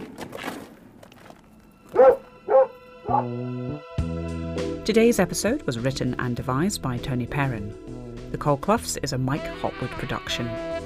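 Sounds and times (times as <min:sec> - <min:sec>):
large pit bull dog barking: 0:01.9 - 0:03.5
speech: 0:04.9 - 0:10.8.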